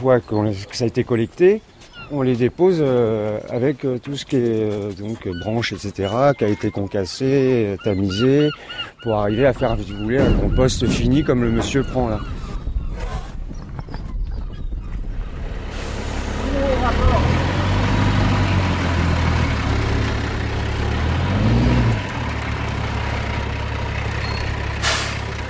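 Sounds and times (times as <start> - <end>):
speech: 0.0 - 12.4
heavy diesel engine of a large truck transporting compost rumbling: 8.5 - 13.6, 14.8 - 25.4
hiss of released air: 24.8 - 25.3.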